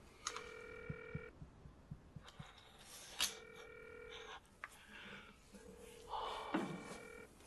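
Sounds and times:
phone ringing with electronic tones, unanswered: 0.3 - 1.5, 3.2 - 4.4, 5.6 - 7.3
soft thumps: 0.9 - 2.6.

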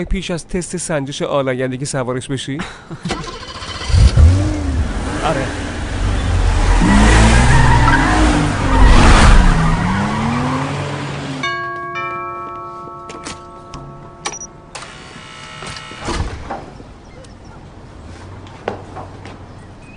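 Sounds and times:
speech: 0.0 - 3.4, 5.2 - 5.6
expensive car engine starting and revving hard: 3.3 - 11.4
tire squeal: 6.1 - 11.0.

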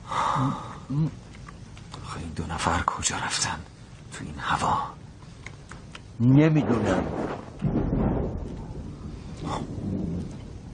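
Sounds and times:
speech: 0.4 - 1.3, 2.2 - 5.0, 6.2 - 7.7
thunder rumbling in a lightning storm: 6.5 - 10.7.

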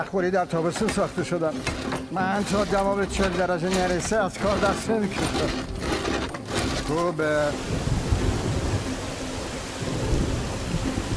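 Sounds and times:
speech: 0.0 - 6.2, 6.9 - 7.8
steady rain pouring down: 5.4 - 11.1
deep continuous thunder rumble: 7.5 - 11.1.

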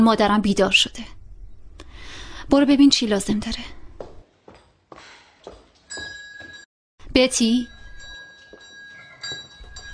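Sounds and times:
speech: 0.0 - 1.2, 2.5 - 3.8, 7.1 - 7.8
bell ringing from a mother's bedroom in a house: 5.9 - 6.7, 7.6 - 9.9.

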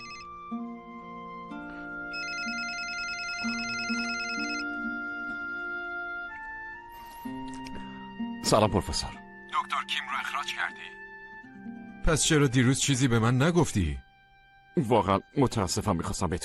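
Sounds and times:
telephone ringing with an electronic melodic ringtone: 0.0 - 0.3, 2.1 - 5.6
speech: 8.5 - 9.2, 9.8 - 11.0, 12.1 - 14.1, 14.8 - 16.4.

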